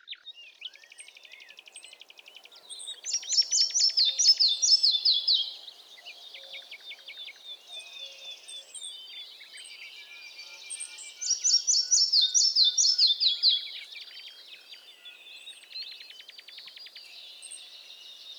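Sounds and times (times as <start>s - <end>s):
nature ambience: 0.3s - 18.3s
red-breasted flycatcher calling: 0.6s - 18.3s.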